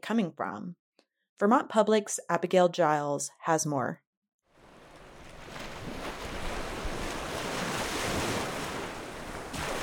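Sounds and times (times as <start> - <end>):
speech: 0.1 - 0.8, 1.4 - 4.0
Lake Champlain waves washing onto sandy shore in Burlington, Vermont: 4.6 - 9.8
gusty wind buffeting the microphone: 5.1 - 9.8.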